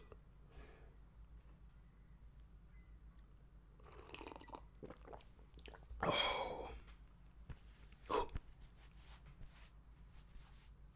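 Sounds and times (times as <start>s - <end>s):
swallow: 3.8s - 6.7s
person sipping water: 3.8s - 6.8s
soft mouth smacking: 3.9s - 6.7s.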